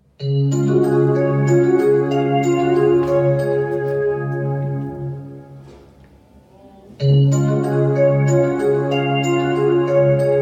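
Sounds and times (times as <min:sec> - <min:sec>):
loud electronic school bell melodic chime in a middle school: 0:00.2 - 0:04.4, 0:07.0 - 0:10.4.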